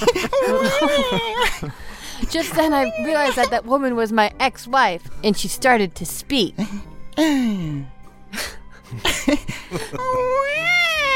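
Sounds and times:
laughter: 0.0 - 3.6, 8.9 - 11.1
woman at a front door making cat-like crying sounds: 0.1 - 1.6, 2.4 - 3.6, 9.9 - 11.1
speech: 1.1 - 10.8.

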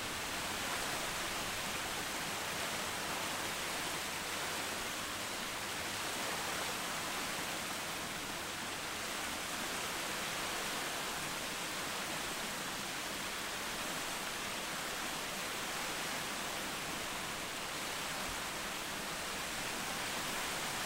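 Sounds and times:
distant waterfall: 0.0 - 20.8.

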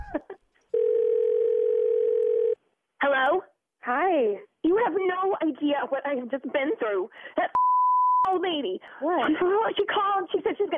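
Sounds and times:
telephone dial tone while calling someone back: 0.8 - 2.6
speech: 4.2 - 10.7
short beeps: 7.6 - 8.3.

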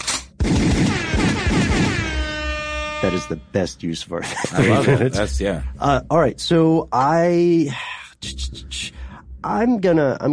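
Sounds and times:
gunfire sound effect as a comic sting: 0.0 - 2.4
air horn sound effect: 0.9 - 3.7
speech: 3.0 - 10.3
laughter: 4.1 - 5.6.

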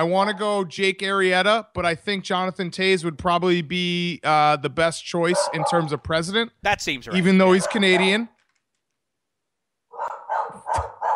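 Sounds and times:
speech: 0.0 - 8.3
dog barking: 5.3 - 5.9, 7.5 - 8.2, 9.9 - 11.1.

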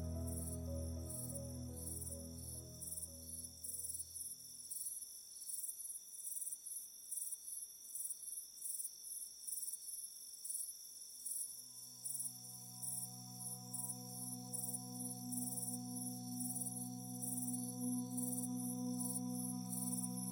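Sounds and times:
low sustained drone: 0.0 - 4.1, 11.8 - 20.3
crickets chirping in the evening: 0.0 - 20.3.

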